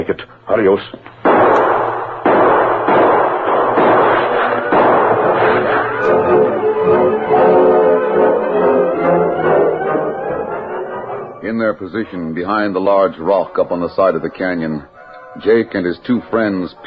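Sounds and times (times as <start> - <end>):
speech: 0.0 - 1.1, 11.5 - 16.8
gunshots exchanged in a canyon below a hill: 1.1 - 8.3
sustained tonal background: 1.3 - 16.8.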